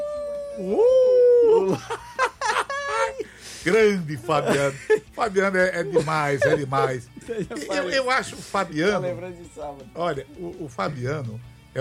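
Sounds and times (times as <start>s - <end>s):
wolf howl sound effect: 0.0s - 1.8s
speech: 0.6s - 1.0s, 1.7s - 2.0s, 3.6s - 11.7s
laughter: 1.4s - 9.2s.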